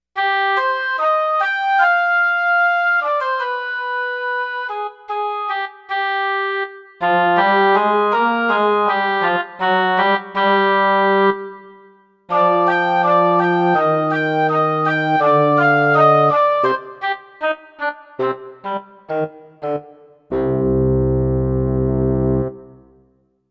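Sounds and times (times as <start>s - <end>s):
woodwind: 0.2s - 22.9s.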